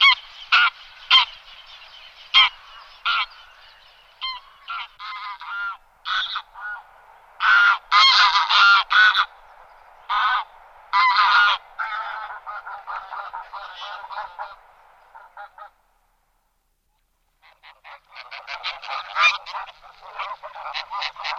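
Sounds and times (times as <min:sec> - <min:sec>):
Greylag goose (Anser anser) giving loud nasal honks and cackles: 0:00.0 - 0:01.4, 0:02.3 - 0:03.4, 0:04.2 - 0:06.8, 0:07.4 - 0:09.4, 0:10.1 - 0:15.8, 0:17.4 - 0:21.3.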